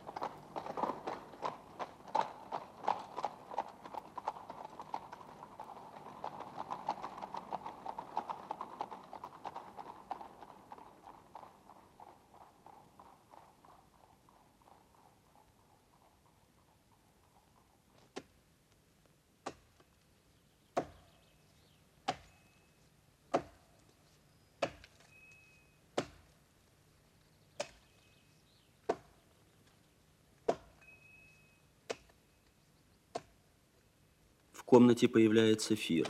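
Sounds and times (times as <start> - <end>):
horse-drawn carriages rolling rumble: 0.0 - 18.1, 34.6 - 36.0
horse-drawn carriage hooves clip-clopping: 0.0 - 36.0
speech: 34.7 - 36.0.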